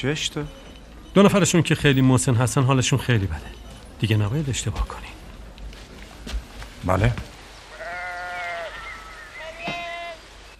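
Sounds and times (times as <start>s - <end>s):
speech: 0.0s - 0.6s, 1.2s - 5.2s, 6.8s - 7.3s
sheep on a hill bleating: 7.7s - 10.2s.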